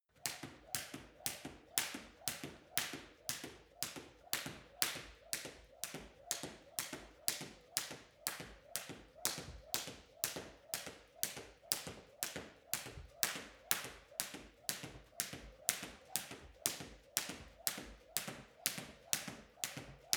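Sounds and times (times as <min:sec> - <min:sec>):
skipping jump: 0:00.2 - 0:20.1.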